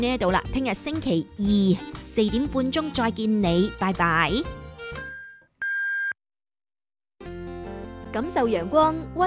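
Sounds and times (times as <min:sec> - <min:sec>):
speech: 0:00.0 - 0:04.6, 0:08.2 - 0:09.2
music: 0:00.0 - 0:05.1, 0:07.2 - 0:09.2.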